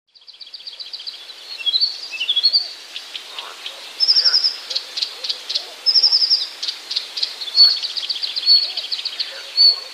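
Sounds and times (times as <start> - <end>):
Blyth's reed warbler song: 0.1 - 9.9
steady background hiss: 0.3 - 9.9.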